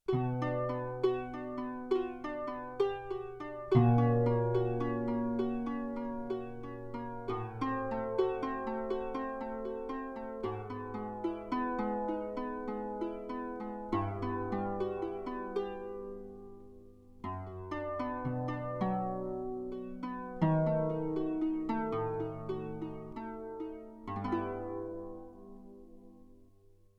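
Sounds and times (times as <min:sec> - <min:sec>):
stereo harp sample on Yamaha TX16W sampler: 0:00.0 - 0:26.9.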